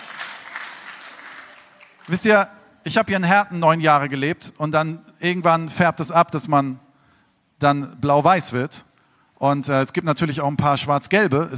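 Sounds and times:
audience applause from football fans: 0.0 - 2.3
speech: 2.1 - 6.8, 7.6 - 11.5.

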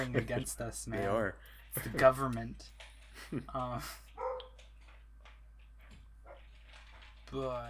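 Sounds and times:
speech: 0.0 - 4.3, 7.3 - 7.6
dog barking short sharp yelps: 4.2 - 4.6.

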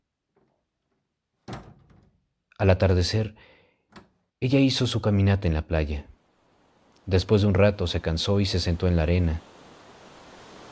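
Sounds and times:
door rattling as it settles: 0.3 - 2.4
door pulled shut with a solid thud: 1.4 - 2.2
speech: 2.6 - 3.6, 4.4 - 6.1, 7.1 - 9.5.

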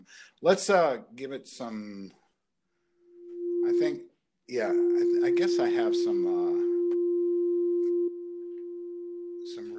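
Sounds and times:
speech: 0.0 - 2.2, 3.8 - 6.8
steady pure synthesizer tone changing pitch as a dial turns: 3.2 - 4.0, 4.6 - 9.7.

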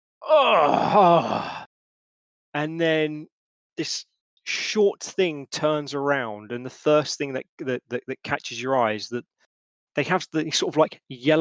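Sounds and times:
speech: 0.2 - 1.6, 2.6 - 9.3, 10.0 - 11.3
person imitating a big yawn and stretch: 0.2 - 1.7.

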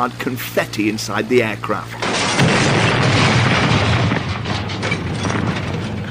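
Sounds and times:
speech: 0.0 - 2.9
armoured limousine explosion of TNT mixed with scrap metal: 2.0 - 6.0.

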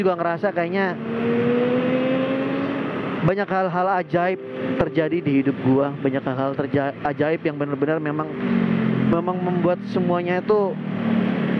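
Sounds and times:
speech: 0.0 - 1.8, 3.2 - 11.2
broad road noise: 0.0 - 11.5
motorcycle engine idling and revving: 0.0 - 11.5.

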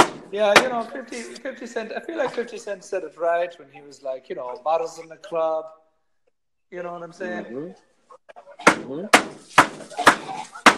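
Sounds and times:
speech: 0.3 - 5.8, 6.7 - 10.7
two pieces of wood slapping together: 8.6 - 10.7.

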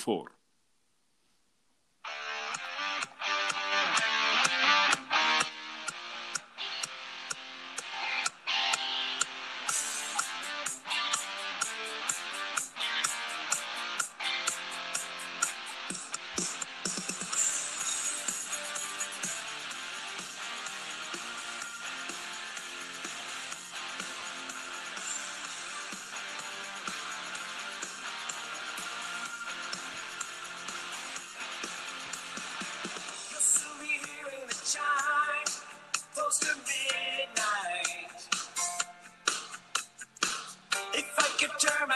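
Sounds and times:
speech: 0.0 - 0.4
driving rock song with drums and distorted guitars: 2.1 - 41.9.

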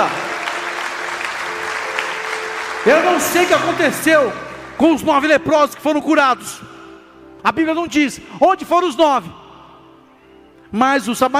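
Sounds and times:
church audience applause: 0.0 - 4.8
speech: 2.8 - 6.7, 7.4 - 9.4, 10.7 - 11.3.

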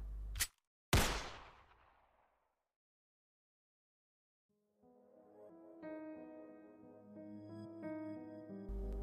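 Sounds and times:
gunshots: 0.9 - 2.4
soft melodic music: 4.5 - 9.0.

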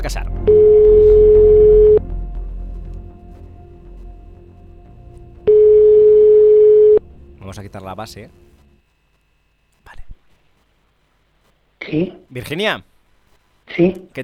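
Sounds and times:
speech: 0.0 - 0.8, 7.5 - 8.5, 11.9 - 12.9, 13.7 - 14.2
telephone ringback tone while calling someone: 0.5 - 2.0, 5.5 - 7.0.

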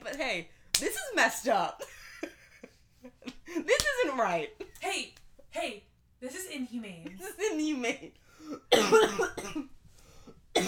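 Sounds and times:
speech: 0.2 - 2.1, 3.5 - 9.8
person coughing: 8.5 - 9.7.

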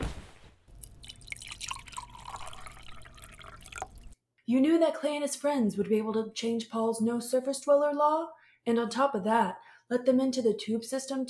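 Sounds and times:
wine poured into a glass: 0.8 - 4.2
speech: 4.5 - 11.2.

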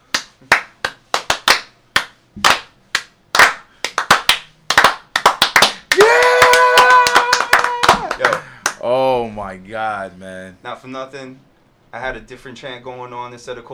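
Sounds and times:
hand clapping: 0.0 - 8.8
crowd cheering: 5.9 - 8.8
speech: 9.5 - 13.7.

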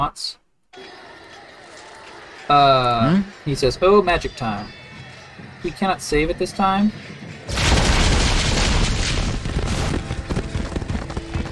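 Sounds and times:
speech: 0.0 - 0.9, 2.5 - 4.8, 5.6 - 7.2
video game explosion blasting through walls: 7.5 - 10.8.

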